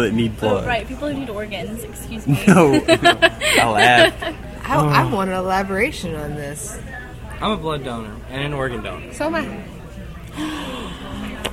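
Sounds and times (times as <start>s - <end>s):
speech: 0.0s - 9.8s, 10.4s - 11.5s
laughter: 2.3s - 5.1s
collective gasp from several people: 3.3s - 4.0s, 10.3s - 11.5s.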